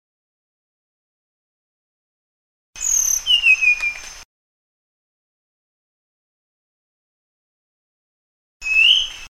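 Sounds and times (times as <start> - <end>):
flycatcher song of sweet high whistled notes: 2.8 - 4.2, 8.6 - 9.2.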